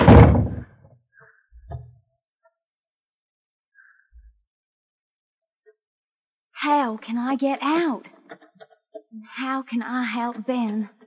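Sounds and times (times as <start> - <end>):
house room door shutting with a heavy thud: 0.0 - 0.7
speech: 6.6 - 8.4, 9.1 - 11.0.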